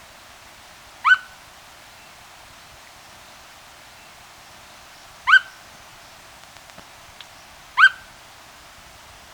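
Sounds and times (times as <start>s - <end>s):
Unicolored Tapaculo giving short downslurred calls in Ecuador: 5.3s - 5.6s.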